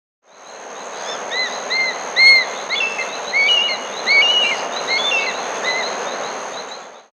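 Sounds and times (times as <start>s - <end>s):
Solitary Eagle Harpyhaliaetus solitarius calling in the South American Andes: 1.3s - 5.9s.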